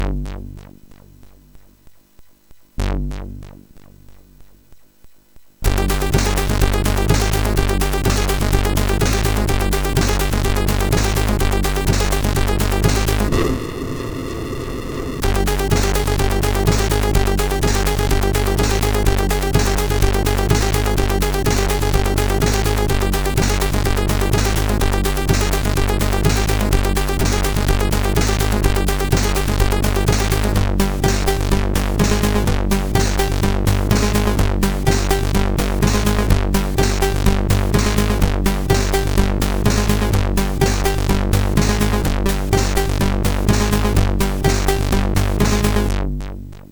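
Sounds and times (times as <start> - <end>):
techno tune on MOS6581R4 sound chip: 5.6 - 46.6.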